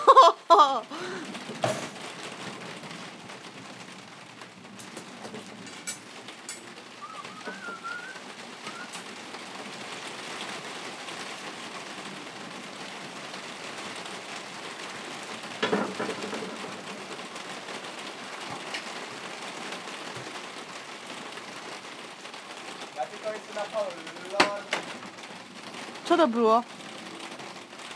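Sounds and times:
heavy rain of big fat drops: 0.0s - 27.9s
speech: 0.1s - 1.8s, 26.2s - 26.8s.

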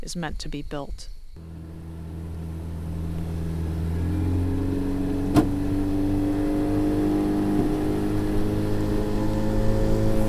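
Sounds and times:
speech: 0.1s - 1.2s
small boat's outboard motor droning on the Tapajós River on a rainy windy day: 1.4s - 10.2s
sharp knock: 5.3s - 5.6s.

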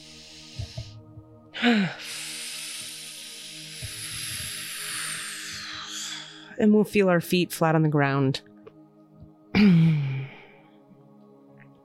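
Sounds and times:
deep breaths into the low belly during a breathing exercise: 0.0s - 6.6s
speech: 1.6s - 2.1s, 6.6s - 8.5s.

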